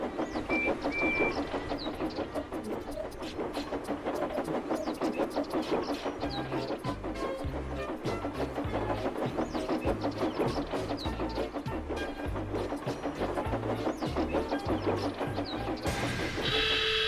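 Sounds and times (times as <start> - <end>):
approaching train rumbling: 0.0 - 17.0
train whistle: 15.9 - 17.0.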